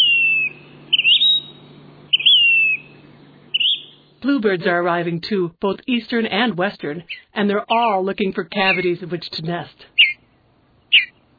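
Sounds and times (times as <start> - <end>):
phoebe calling: 0.0 - 4.1, 7.0 - 7.4, 8.6 - 9.0, 10.0 - 10.3, 10.9 - 11.2
speech: 4.2 - 10.2.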